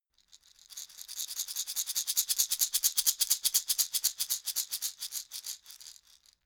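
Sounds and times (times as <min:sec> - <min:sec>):
wooden shaker rattling: 0:00.2 - 0:06.4.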